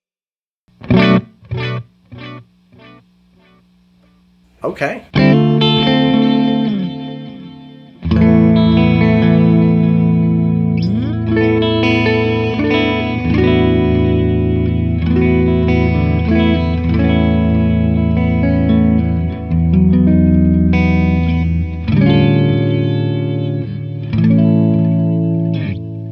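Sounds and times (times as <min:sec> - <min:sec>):
electric guitar played through a tape echo: 0:00.8 - 0:26.1
speech: 0:04.6 - 0:05.6.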